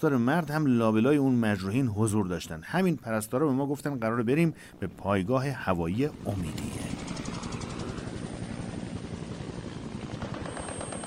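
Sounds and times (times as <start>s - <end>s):
speech: 0.0s - 7.0s
Chinook helicopter heavy twin rotor blades chopping: 4.2s - 11.0s.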